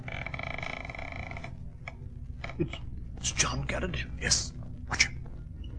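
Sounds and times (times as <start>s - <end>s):
front door creaking open: 0.0s - 2.8s
speech: 2.6s - 5.1s.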